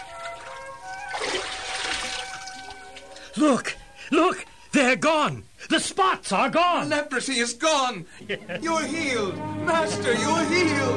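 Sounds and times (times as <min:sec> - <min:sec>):
water splashing as a man dips under: 0:00.0 - 0:03.3
speech: 0:03.4 - 0:10.9.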